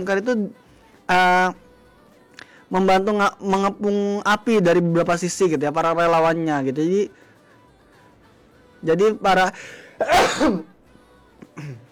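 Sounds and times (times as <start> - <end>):
speech: 0.0 - 1.6, 2.7 - 7.2, 8.8 - 10.7, 11.6 - 11.8
person sneezing: 10.0 - 10.7.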